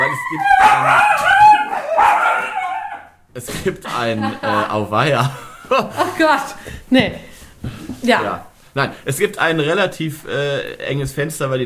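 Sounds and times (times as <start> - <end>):
speech: 0.2 - 1.4, 3.4 - 11.6
dog barking and yipping: 0.6 - 3.1
laughter: 3.8 - 6.4.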